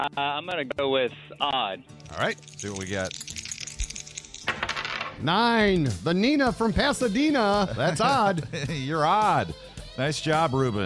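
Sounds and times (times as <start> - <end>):
speech: 0.0 - 3.4, 5.2 - 10.8
dice clattering and tumbling across a hard surface: 2.1 - 5.2.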